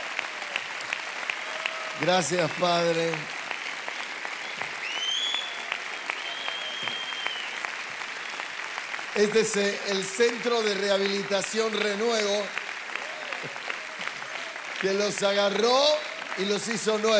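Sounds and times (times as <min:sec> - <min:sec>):
standing church audience applauding: 0:00.0 - 0:17.1
speech: 0:02.0 - 0:03.4, 0:09.2 - 0:12.6, 0:14.8 - 0:17.1
faint whistles: 0:04.4 - 0:07.6.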